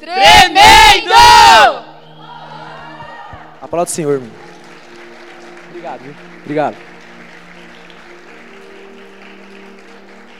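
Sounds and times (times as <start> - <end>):
speech: 0.0 - 1.8, 3.7 - 4.4, 5.8 - 6.9
audience shouting and cheering: 0.1 - 3.6.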